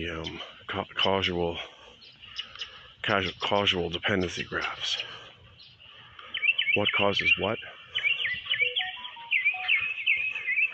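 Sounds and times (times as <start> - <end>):
speech: 0.0 - 1.7, 3.1 - 5.2, 6.8 - 7.8
mobile phone beeping: 8.4 - 10.1.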